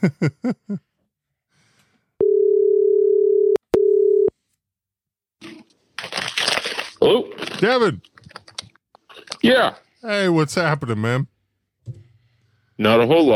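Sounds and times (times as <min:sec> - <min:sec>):
speech: 0:00.0 - 0:00.9, 0:07.0 - 0:08.1, 0:09.4 - 0:11.3, 0:12.8 - 0:13.3
outgoing phone call electronic ringing tone: 0:02.2 - 0:04.3.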